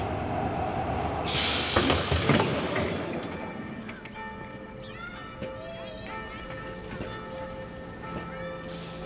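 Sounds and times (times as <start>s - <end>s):
train rolling along the rails: 0.0s - 9.0s
loud burst of hiss: 1.3s - 3.2s.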